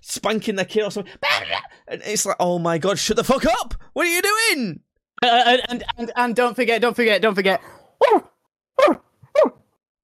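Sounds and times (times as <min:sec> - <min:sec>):
speech: 0:00.1 - 0:09.6
dog barking: 0:08.0 - 0:09.6.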